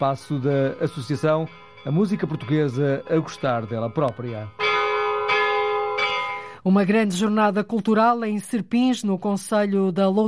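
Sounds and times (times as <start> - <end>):
speech: 0.0 - 4.6, 6.6 - 10.2
large donated bell ringing at a music association's door: 0.0 - 6.7.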